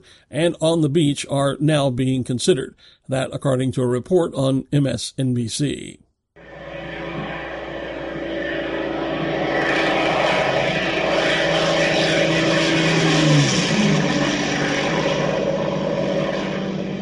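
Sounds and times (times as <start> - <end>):
speech: 0.0 - 6.0
Merlin engine of a Supermarine Spitfire World War II fighter plane roaring: 6.4 - 16.9.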